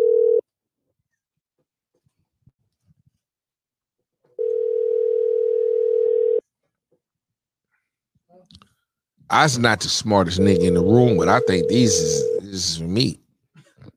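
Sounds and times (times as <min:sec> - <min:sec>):
incoming telephone call tone: 0:00.0 - 0:00.4, 0:04.4 - 0:06.4, 0:10.3 - 0:12.5
speech: 0:09.3 - 0:13.2.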